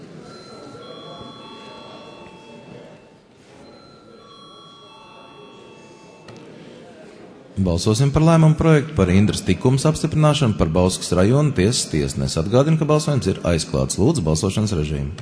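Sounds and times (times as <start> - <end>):
murmur of a large hall with faint voices: 0.0 - 15.2
parliament voting bell ringing: 0.2 - 6.7
speech: 7.6 - 15.2.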